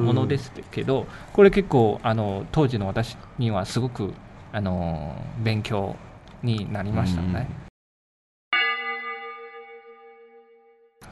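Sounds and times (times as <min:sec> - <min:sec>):
speech: 0:00.1 - 0:07.6
bell chime ringing: 0:08.6 - 0:11.0.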